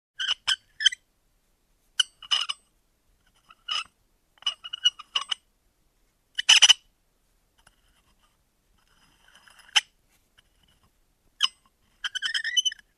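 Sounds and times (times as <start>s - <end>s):
small metal wheel squeaking: 0.2s - 1.0s, 2.0s - 2.6s, 3.3s - 5.4s, 6.4s - 6.8s, 7.6s - 12.9s.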